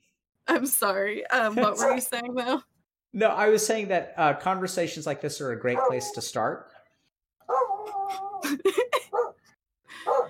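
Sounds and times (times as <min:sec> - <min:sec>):
speech: 0:00.5 - 0:06.8, 0:08.5 - 0:09.2
female dog barking: 0:05.7 - 0:06.2, 0:07.4 - 0:08.0, 0:09.1 - 0:09.4, 0:10.0 - 0:10.2
female dog whining yowl: 0:07.5 - 0:08.4.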